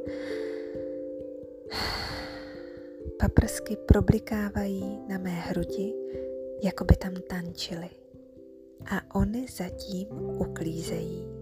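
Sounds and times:
deep inhale: 0:00.0 - 0:01.1, 0:01.7 - 0:03.0
soft sustained music with gentle regular pulsing beat: 0:00.0 - 0:11.3
speech: 0:03.2 - 0:08.0, 0:08.8 - 0:11.3.

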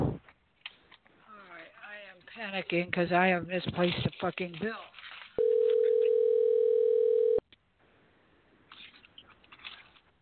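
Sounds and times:
speech: 0:02.4 - 0:05.0
electronic telephone tone during a call: 0:05.4 - 0:07.4.

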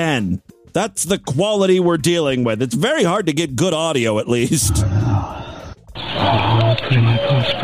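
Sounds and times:
speech: 0:00.0 - 0:05.3, 0:06.2 - 0:07.6
owls hooting: 0:04.5 - 0:06.6.

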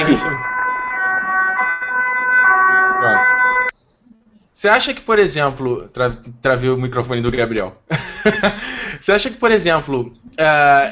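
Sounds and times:
ambulance siren wailing: 0:00.0 - 0:03.8
speech: 0:00.1 - 0:00.5, 0:04.6 - 0:10.8
laughter: 0:07.9 - 0:08.9.

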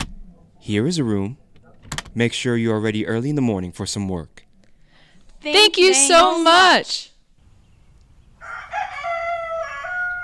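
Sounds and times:
speech: 0:00.6 - 0:01.4, 0:02.1 - 0:04.4, 0:05.4 - 0:07.1
rooster crowing early in the morning: 0:08.4 - 0:10.2.

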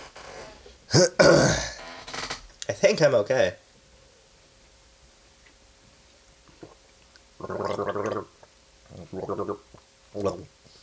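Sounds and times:
speech: 0:00.9 - 0:01.4, 0:02.7 - 0:03.6
person gargling: 0:00.9 - 0:01.8, 0:07.4 - 0:09.6.

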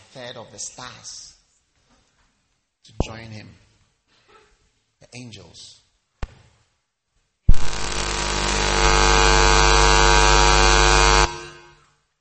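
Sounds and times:
speech: 0:00.2 - 0:01.4, 0:02.8 - 0:03.7, 0:05.1 - 0:05.8
loud steady electrical hum with a harsh buzzing edge: 0:07.5 - 0:11.9.

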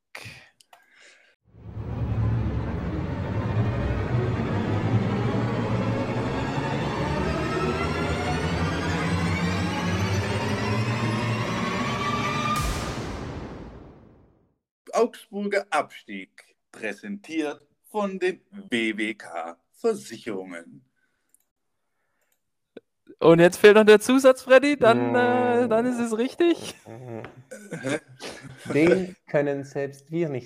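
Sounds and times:
swooshing sweep: 0:01.5 - 0:14.3
podcast segment jingle: 0:02.5 - 0:12.9
speech: 0:15.0 - 0:20.9, 0:23.2 - 0:30.4
laughter: 0:26.5 - 0:29.2.

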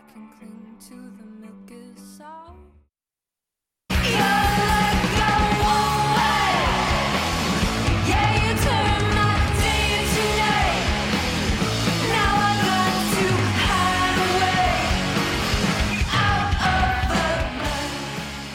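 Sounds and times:
shouted rock lead vocal: 0:03.9 - 0:18.3
distorted rock guitars: 0:03.9 - 0:18.5
driving rock drums: 0:03.9 - 0:18.5.

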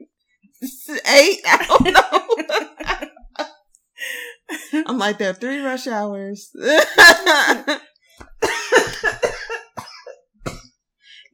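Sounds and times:
speech: 0:00.6 - 0:02.6, 0:05.0 - 0:07.8
laughter: 0:01.5 - 0:03.5, 0:08.4 - 0:09.7
person in a raspy coughing fit: 0:08.4 - 0:10.7.

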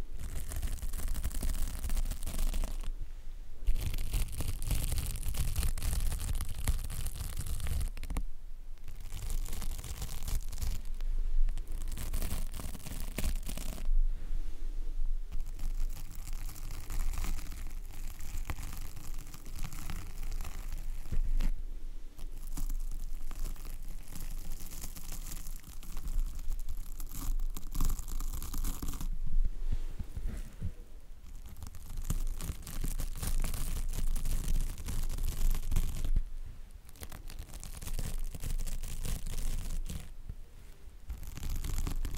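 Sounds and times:
microphone scratching and rubbing: 0:00.0 - 0:02.9, 0:03.6 - 0:08.2, 0:08.8 - 0:36.3, 0:36.9 - 0:40.2, 0:41.1 - 0:42.1.

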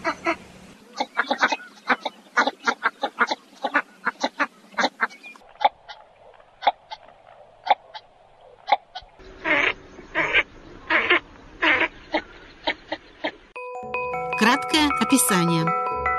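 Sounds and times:
northern shoveler duck calls: 0:00.0 - 0:06.0, 0:08.7 - 0:13.4
brief tonal chime: 0:13.6 - 0:16.1.

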